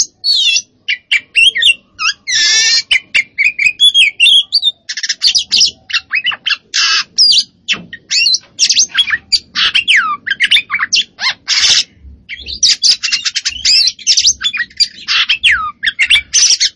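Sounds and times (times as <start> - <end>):
Oriental magpie-robin of the Kacer poci variety singing vigorously: 0.0 - 16.7.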